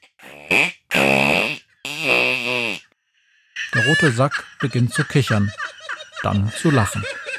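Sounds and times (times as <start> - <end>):
voice imitating fart sounds with the mouth: 0.0 - 2.9
laughter: 3.7 - 7.3
speech: 4.0 - 7.2.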